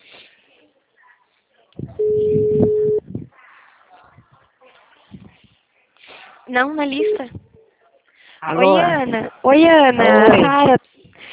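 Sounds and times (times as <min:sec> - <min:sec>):
telephone ringback tone while a call is placed: 0:02.0 - 0:03.0
speech: 0:06.5 - 0:07.4, 0:08.4 - 0:10.8.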